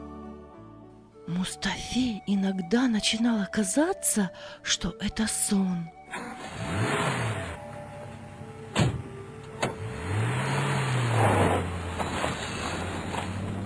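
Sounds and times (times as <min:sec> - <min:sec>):
speech: 0:01.3 - 0:06.2
car engine racing: 0:06.1 - 0:13.6.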